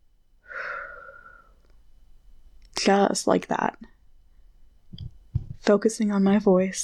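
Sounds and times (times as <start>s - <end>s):
slow breath in a guided breathing exercise: 0.4s - 1.7s
speech: 2.8s - 3.9s, 5.6s - 6.8s.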